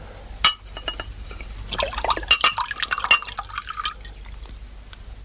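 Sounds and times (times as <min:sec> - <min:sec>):
sharp glassy clinks: 0:00.5 - 0:01.5, 0:02.1 - 0:04.2
trickling drips: 0:00.8 - 0:05.0
scotch pouring from a bottle into a glass: 0:01.4 - 0:04.6.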